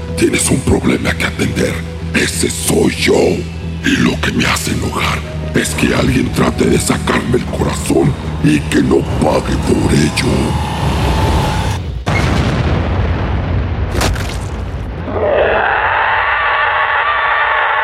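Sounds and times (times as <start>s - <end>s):
speech: 0.2s - 10.9s
powerful punch blasting a hole through a body, roaring blast: 10.8s - 17.7s.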